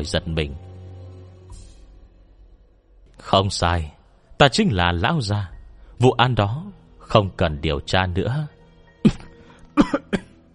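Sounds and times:
speech: 0.0s - 0.6s, 3.2s - 9.2s, 9.8s - 10.2s
man with dry cough coughing up blood: 9.0s - 10.4s.

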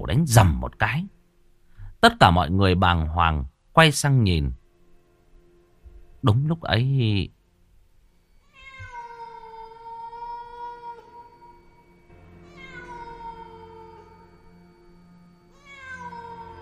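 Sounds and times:
speech: 0.0s - 1.2s, 2.0s - 4.6s, 6.2s - 7.4s
black cat meowing: 8.4s - 11.8s, 12.4s - 14.4s, 15.5s - 16.5s.

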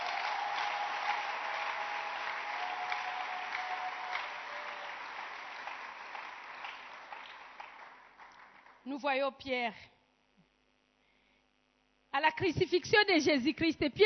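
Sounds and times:
church congregation applauding: 0.0s - 8.9s
speech: 8.9s - 9.9s, 12.2s - 14.0s.

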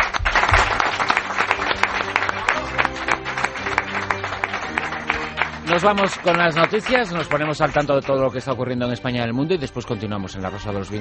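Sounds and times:
applause from an audience of listeners: 0.0s - 8.5s
speech: 5.8s - 11.0s.

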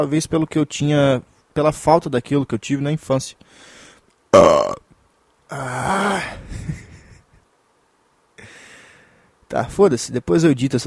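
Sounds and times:
speech: 0.0s - 4.8s, 5.5s - 6.1s, 9.5s - 10.8s
person burping: 4.3s - 4.9s, 5.5s - 6.4s.

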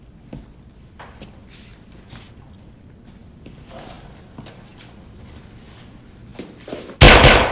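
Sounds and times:
pistol gunshot: 7.0s - 7.5s.

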